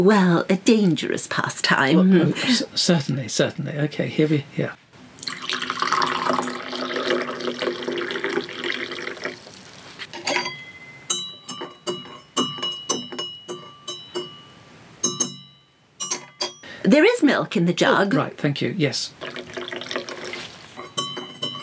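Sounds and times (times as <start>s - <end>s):
speech: 0.0s - 4.8s, 16.9s - 19.2s
liquid pouring into a willow-pattern china cup: 5.2s - 9.7s, 19.2s - 21.6s
light ceramic clinks and taps: 10.3s - 16.6s, 20.8s - 21.6s.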